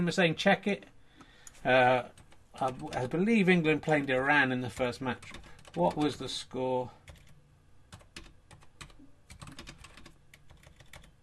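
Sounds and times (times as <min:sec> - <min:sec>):
speech: 0:00.0 - 0:00.9, 0:01.6 - 0:07.0
low hum: 0:00.0 - 0:11.2
typing on a new computer keyboard: 0:02.2 - 0:03.1, 0:04.8 - 0:06.1, 0:07.1 - 0:11.2.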